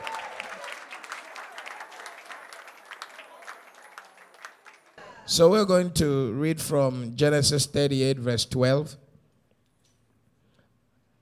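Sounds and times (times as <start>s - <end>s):
crowd applauding in praise of the Lord before a pastor's sermon: 0.0s - 5.3s
speech: 5.3s - 9.0s.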